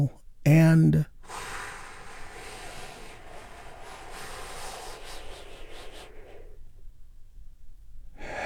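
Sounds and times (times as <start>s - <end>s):
speech: 0.0s - 1.5s
slow deep breath in and out during a guided calming exercise: 1.1s - 7.2s, 8.1s - 8.4s.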